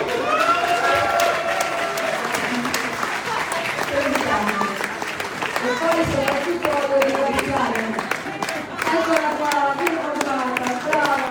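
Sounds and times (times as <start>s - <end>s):
people whooping: 0.0s - 2.4s
crowd applause: 0.0s - 11.2s.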